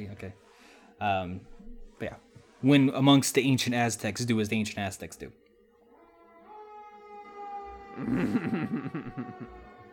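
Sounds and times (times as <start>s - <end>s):
speech: 0.0s - 5.4s, 8.0s - 9.7s
emergency vehicle siren passing outside: 5.9s - 9.9s.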